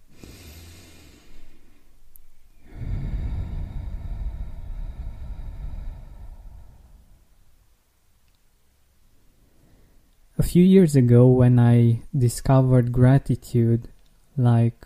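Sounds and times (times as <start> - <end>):
deep breath in and out: 0.0 - 7.5, 9.2 - 10.1
speech: 10.4 - 14.8.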